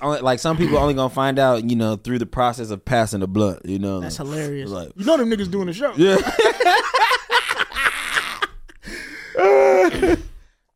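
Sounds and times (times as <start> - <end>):
speech: 0.0 - 7.0
person coughing: 0.5 - 1.0, 9.8 - 10.4
strained voiced sound possibly laughter: 6.6 - 8.7.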